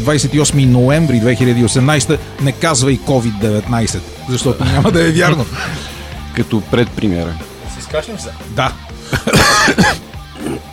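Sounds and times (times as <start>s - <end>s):
speech: 0.0s - 10.7s
harsh hacking smoker's cough: 9.0s - 10.7s.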